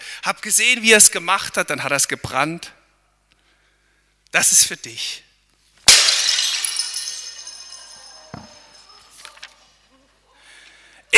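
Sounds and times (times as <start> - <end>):
speech: 0.2 - 2.8, 4.3 - 5.2
ceramic jug smashing: 5.8 - 8.8
ceramic shards clattering and tinkling: 5.9 - 9.5.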